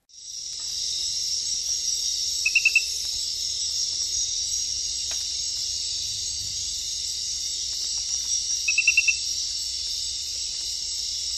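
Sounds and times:
insect drone: 0.0s - 11.3s
centrolenid glass frog clicking in the Ecuadorian Amazon: 8.7s - 9.2s.

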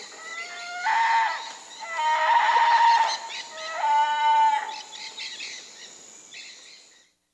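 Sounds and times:
black-faced spider monkey wailing cries: 0.2s - 4.7s.

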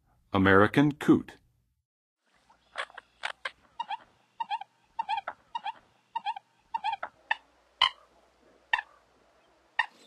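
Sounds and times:
American Coot calling in the Western USA: 2.5s - 10.0s.

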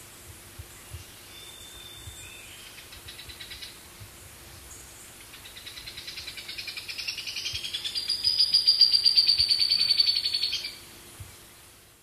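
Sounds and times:
buff-fronted foliage-gleaner chattering song in Ecuador: 0.9s - 3.8s, 5.2s - 10.8s.

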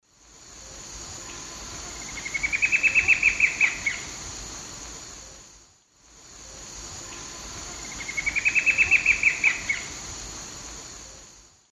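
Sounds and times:
Herpsilochmus gentryi song in South America Eastern Lowlands: 1.2s - 4.1s, 7.1s - 9.9s.

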